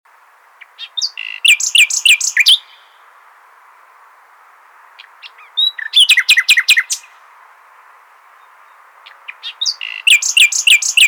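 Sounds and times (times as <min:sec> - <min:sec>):
common nightingale trilling and chattering: 0:00.4 - 0:03.0, 0:04.8 - 0:07.2, 0:08.2 - 0:11.0.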